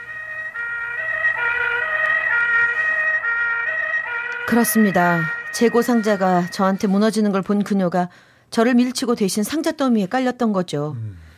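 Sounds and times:
loud ambulance siren wailing with rising and falling tones: 0.0s - 7.8s
speech: 4.5s - 11.2s.

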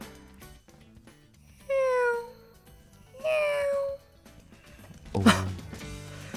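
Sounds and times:
person imitating drowsy sleepy cat meows: 1.6s - 2.6s, 3.2s - 4.0s
laughter: 5.1s - 5.8s
speech: 5.2s - 5.4s.

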